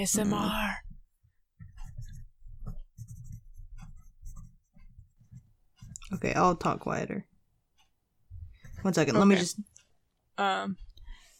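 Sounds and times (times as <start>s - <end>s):
speech: 0.0s - 0.8s, 6.1s - 7.3s, 8.8s - 9.7s, 10.4s - 10.8s
pen or pencil scratching across paper: 1.6s - 7.0s.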